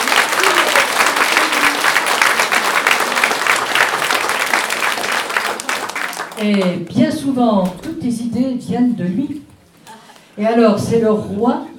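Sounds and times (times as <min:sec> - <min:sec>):
crowd applauding with many hands clapping: 0:00.0 - 0:06.7
speech: 0:06.4 - 0:09.4, 0:10.4 - 0:11.7.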